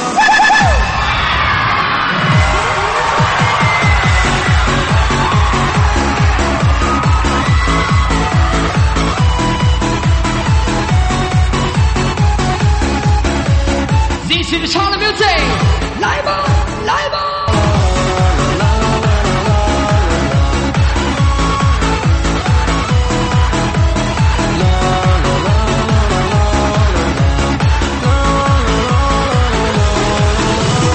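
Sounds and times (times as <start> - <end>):
live concert audience roaring and screaming: 0.1 - 10.9
steady pounding beat: 2.2 - 30.9.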